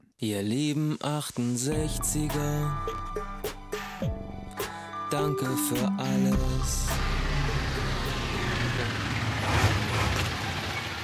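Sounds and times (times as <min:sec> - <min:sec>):
speech: 0:00.2 - 0:03.3, 0:05.2 - 0:07.1
heavy moving trucks driving out of a depot: 0:06.4 - 0:11.0.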